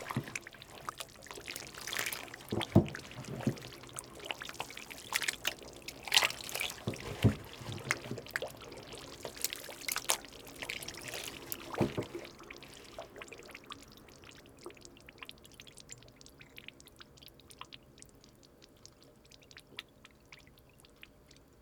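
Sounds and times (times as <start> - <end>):
thick fermenting soy mash being stirred: 0.0 - 14.8
carbon dioxide bubbles fizzing in fermenting soy mash: 0.0 - 21.5.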